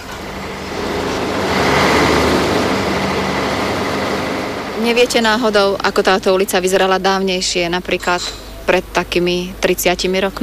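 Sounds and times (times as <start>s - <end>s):
train standing: 0.0s - 5.8s
busy traffic rumble on Botová Street: 0.0s - 10.4s
speech: 4.8s - 10.4s.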